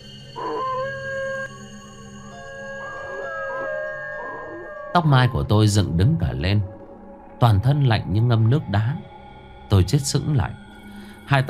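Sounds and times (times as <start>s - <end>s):
dog howling long and mournfully outside in an alley: 0.0s - 6.4s
speech: 5.0s - 6.7s, 7.4s - 9.1s, 9.7s - 10.6s, 11.3s - 11.4s.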